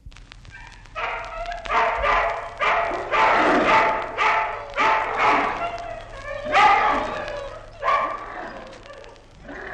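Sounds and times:
hungry dogs gnawing meat at night: 0.5 - 9.7
about a hundred hungry dogs growling and snarling at night: 1.8 - 9.7.

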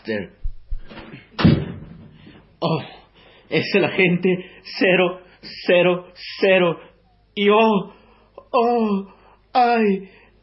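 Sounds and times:
speech: 0.0 - 1.6, 2.6 - 10.2
soft low thumps of a door being handled: 0.4 - 2.5
loud wooden door bang: 1.4 - 2.3.

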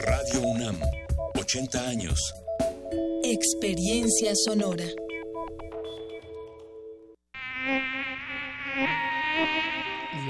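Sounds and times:
speech: 0.2 - 5.6
mosquito whining: 7.4 - 10.2.

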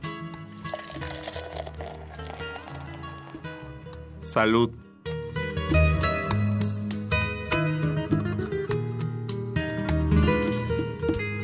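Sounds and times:
busy music: 0.0 - 11.4
drink pouring into a glass: 0.5 - 3.8
faint clinks: 0.6 - 3.6
bar-room clatter: 0.7 - 3.5
speech: 4.3 - 4.8.

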